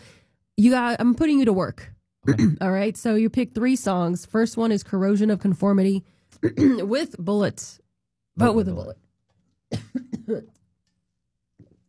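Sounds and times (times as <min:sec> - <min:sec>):
speech: 0:00.6 - 0:07.8, 0:08.4 - 0:09.0, 0:09.7 - 0:10.6
person with allergies coughing: 0:02.3 - 0:02.6, 0:06.4 - 0:07.0, 0:09.7 - 0:10.6.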